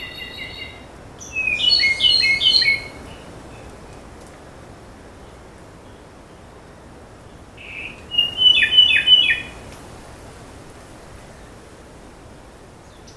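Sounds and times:
Ryukyu robin singing on Nakanoshima, Japan: 0.0s - 3.8s, 7.6s - 9.6s.

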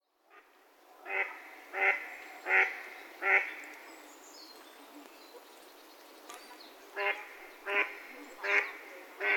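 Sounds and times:
mallard giving raspy nasal quacks: 1.0s - 3.5s, 7.0s - 9.3s.

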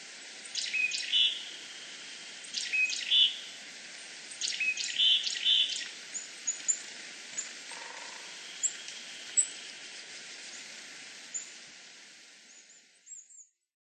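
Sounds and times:
faint steady hiss: 0.0s - 13.7s
willow tit giving short high notes in Nasushiobara: 0.4s - 3.5s, 4.3s - 10.7s, 11.3s - 11.6s.

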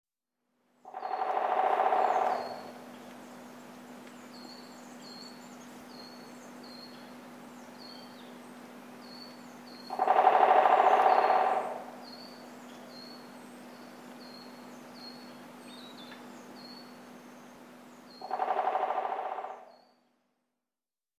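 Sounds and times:
Great Spotted Woodpecker: 0.9s - 3.2s, 9.2s - 13.2s, 18.1s - 20.0s.

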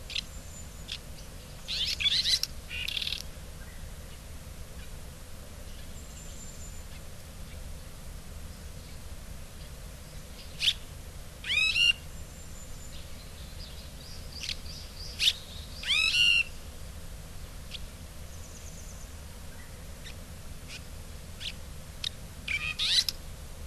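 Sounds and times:
faint chirps and clicks: 0.9s - 3.3s
red-rumped swallow harsh calls in Hyogo: 1.7s - 3.2s, 11.4s - 12.0s, 14.3s - 16.6s, 20.0s - 23.2s.

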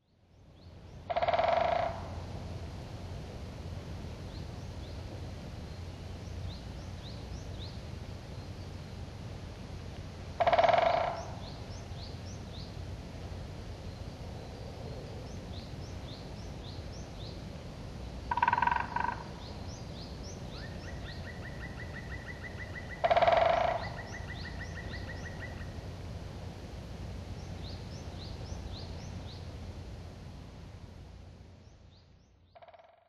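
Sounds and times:
Black Woodpecker calling in Tomakomai: 1.1s - 2.2s, 10.4s - 11.7s, 18.3s - 19.8s, 20.5s - 25.8s, 32.4s - 33.0s.

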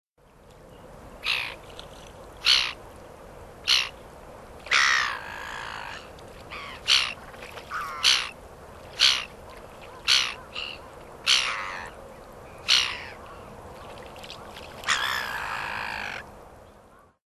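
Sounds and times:
black-headed gull in Hyogo: 2.4s - 2.8s, 3.7s - 3.9s, 4.7s - 8.3s, 9.0s - 12.0s, 12.7s - 13.3s, 14.8s - 16.2s.

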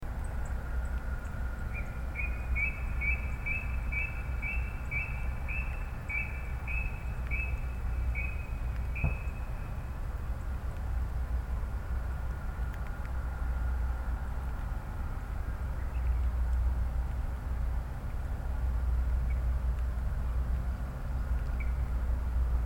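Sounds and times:
low background rumble: 0.0s - 22.6s
brown-cheeked rail calling short clear whistled notes: 1.7s - 9.8s.

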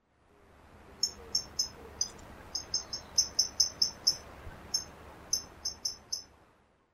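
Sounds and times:
Pleske's Grasshopper Warbler singing at Kashima: 1.0s - 6.3s.

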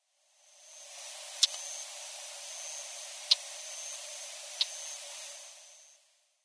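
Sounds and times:
Northern Wheatear calling: 1.3s - 5.5s.

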